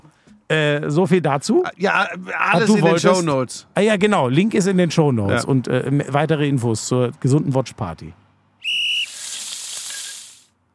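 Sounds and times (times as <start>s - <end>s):
speech: 0.5s - 8.2s
high whistling tone: 8.6s - 10.4s
food sizzling in a frying pan: 9.0s - 10.5s.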